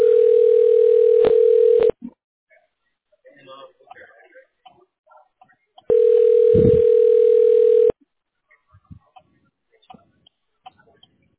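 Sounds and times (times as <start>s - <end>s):
long steady telephone hold tones while waiting for an agent: 0.0s - 2.0s, 5.9s - 7.9s.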